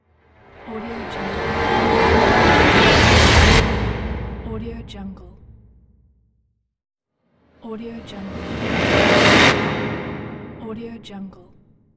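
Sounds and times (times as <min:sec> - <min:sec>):
ghostly whoosh: 0:00.2 - 0:05.2, 0:07.8 - 0:11.1.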